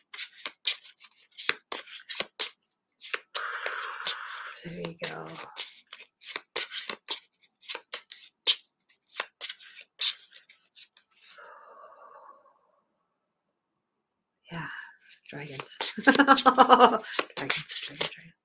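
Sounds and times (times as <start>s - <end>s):
cards riffled and shuffled during a card reading: 0.0s - 11.4s, 15.4s - 18.2s
speech: 4.6s - 5.6s, 15.4s - 18.1s.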